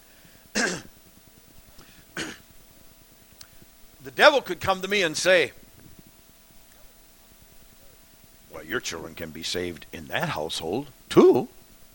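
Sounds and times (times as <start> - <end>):
faint hum: 0.0 - 11.9
short harsh coughs or throat clearing: 0.5 - 1.0, 2.1 - 2.5
speech: 4.1 - 5.6, 8.7 - 11.6.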